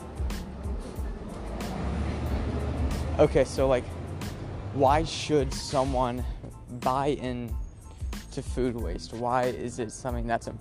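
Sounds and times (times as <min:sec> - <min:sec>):
truck engine rumbling past outside: 0:00.0 - 0:08.4
speech: 0:03.2 - 0:04.0, 0:04.8 - 0:07.6, 0:08.4 - 0:10.5.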